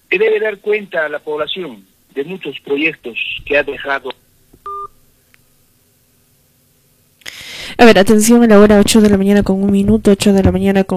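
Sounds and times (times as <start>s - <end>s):
speech: 0.2s - 4.2s, 7.8s - 10.9s
telephone call cut-off two-tone electronic beep: 4.7s - 4.9s.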